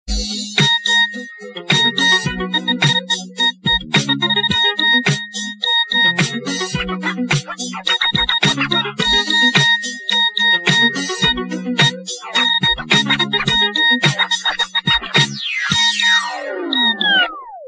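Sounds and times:
mono electronic Nokia ringtone: 0.3 - 17.6.

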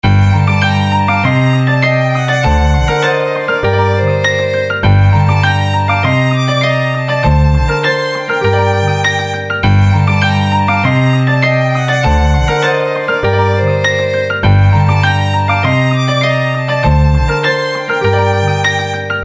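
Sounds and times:
hip hop violin ringtone: 0.0 - 19.2.

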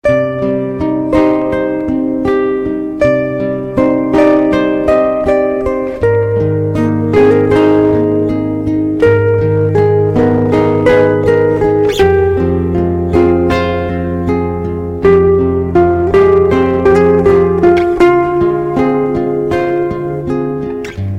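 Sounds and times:
light guitar: 0.0 - 21.1.

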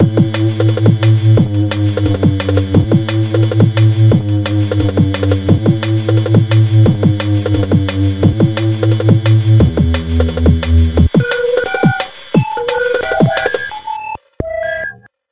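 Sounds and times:
British techno music: 0.0 - 14.2.

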